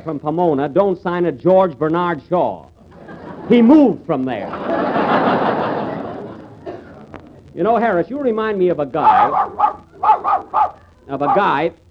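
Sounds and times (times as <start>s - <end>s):
speech: 0.0s - 2.7s, 3.5s - 4.8s, 7.6s - 11.8s
laughter: 2.8s - 7.5s, 9.0s - 11.6s
dog barking: 9.0s - 11.6s.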